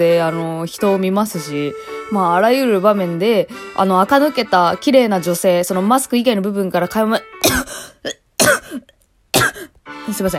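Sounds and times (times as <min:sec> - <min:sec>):
speech: 0:00.0 - 0:07.3, 0:10.1 - 0:10.3
person coughing harshly: 0:07.4 - 0:09.8.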